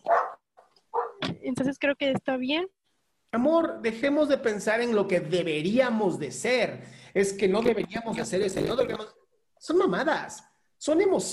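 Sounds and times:
dogs barking: 0.0s - 1.2s
speech: 1.5s - 11.3s.

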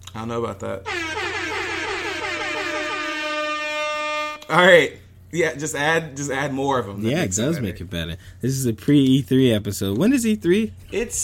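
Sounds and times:
speech: 0.2s - 1.4s, 4.5s - 11.2s
sustained blaring air horn sound effect: 0.8s - 4.6s.

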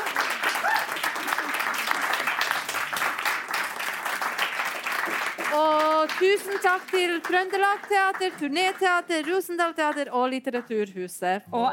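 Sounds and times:
faint cheer: 0.0s - 2.3s
audience applause: 0.0s - 9.5s
speech: 5.6s - 11.7s.

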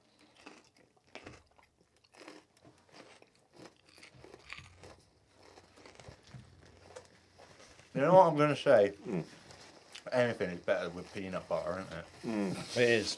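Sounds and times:
crunchy bite of food: 0.0s - 7.1s
steady chewing of crunchy food: 0.0s - 8.0s, 9.0s - 12.9s
speech: 8.0s - 9.4s, 10.1s - 13.1s.

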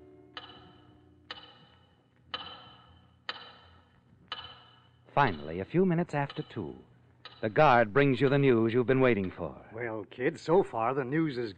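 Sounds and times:
faint low hum: 0.0s - 11.5s
big clock ticking: 0.3s - 9.6s
speech: 5.2s - 11.5s.

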